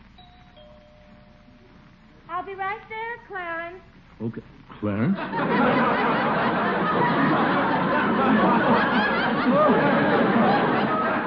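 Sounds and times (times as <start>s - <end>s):
two-tone doorbell chime: 0.2s - 1.8s
speech: 2.4s - 10.8s
laughter: 5.0s - 11.2s.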